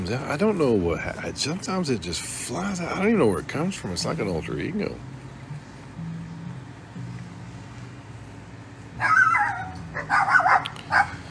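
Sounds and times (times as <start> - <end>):
low hum: 0.0 - 11.3
speech: 0.1 - 5.1
several dogs barking and yipping behind open windows: 8.9 - 11.3.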